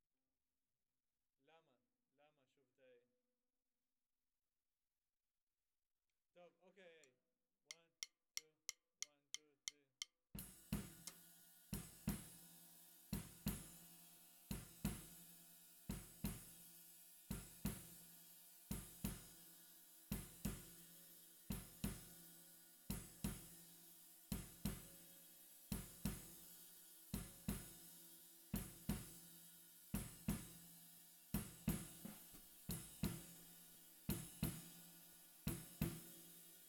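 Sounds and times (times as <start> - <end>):
snare drum: 10.4 - 36.6.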